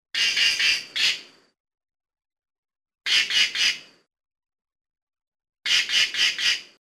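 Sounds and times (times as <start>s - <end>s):
cock-of-the-rock harsh nasal squawks: 0.2s - 1.3s, 3.1s - 3.8s, 5.7s - 6.7s.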